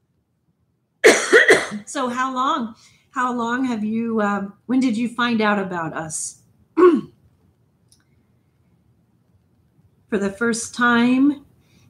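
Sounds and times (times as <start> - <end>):
speech: 1.7 - 7.1, 10.1 - 11.5
raspy cough-like throat clearing: 6.8 - 7.2.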